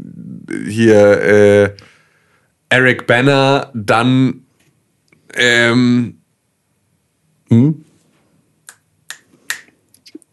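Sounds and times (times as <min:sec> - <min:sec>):
speech: 0:00.5 - 0:01.9, 0:02.7 - 0:04.4, 0:05.3 - 0:06.2, 0:07.5 - 0:07.9
crisp finger snaps: 0:08.7 - 0:10.2.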